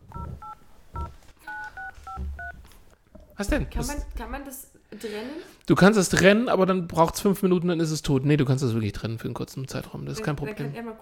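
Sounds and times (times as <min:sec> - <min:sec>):
telephone keypad tones while dialing a phone number: 0:00.1 - 0:02.6
soft low thumps of phone handling: 0:01.8 - 0:04.3
speech: 0:03.4 - 0:10.9.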